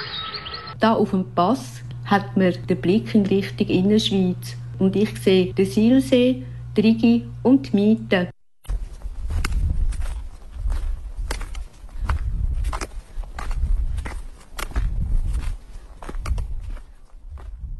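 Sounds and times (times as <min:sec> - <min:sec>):
speech: 0:00.8 - 0:08.3
footsteps walking downhill on a mountain pass: 0:08.7 - 0:17.7.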